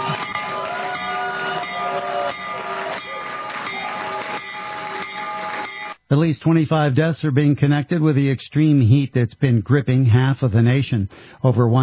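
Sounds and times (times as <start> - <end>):
stock exchange opening bell ringing: 0.0 - 6.0
speech: 6.1 - 11.8.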